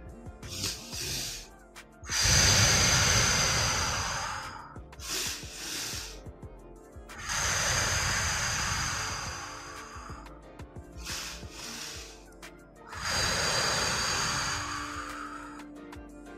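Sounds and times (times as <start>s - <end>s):
long airy exhale: 0.5s - 1.5s, 2.1s - 6.2s, 7.2s - 10.3s, 11.0s - 12.3s, 12.9s - 15.7s
sniffing inhale through the nose: 0.5s - 1.5s, 2.1s - 6.3s, 7.1s - 15.8s.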